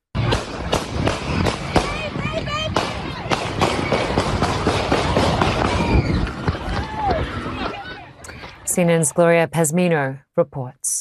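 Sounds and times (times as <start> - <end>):
gunshots at a crowded outdoor summertime community festival in Toledo, Ohio: 0.2 - 7.3
crowd noise at an outdoor summertime community festival: 0.2 - 9.9
people shouting: 1.0 - 8.2
speech: 8.8 - 10.9.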